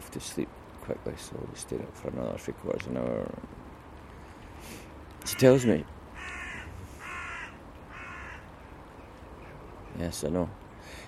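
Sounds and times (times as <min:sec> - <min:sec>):
speech: 0:00.2 - 0:03.6, 0:04.6 - 0:06.0, 0:10.0 - 0:11.0
jackdaw flock calling in the morning: 0:04.6 - 0:10.0, 0:10.7 - 0:11.0.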